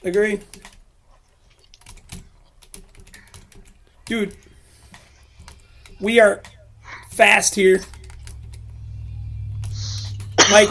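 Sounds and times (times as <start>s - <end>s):
speech: 0.0s - 0.6s, 4.1s - 4.4s, 6.0s - 6.5s, 7.2s - 8.0s, 10.5s - 10.7s
typing on a computer keyboard: 0.0s - 0.9s, 1.5s - 6.6s, 7.8s - 8.6s.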